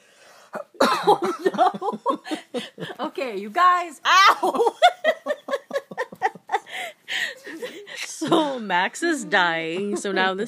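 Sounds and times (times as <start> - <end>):
person clearing throat: 0.6 - 1.9
speech: 1.0 - 2.0, 2.6 - 5.1, 8.2 - 10.4
laughter: 1.1 - 3.0, 4.1 - 8.8, 9.4 - 10.4.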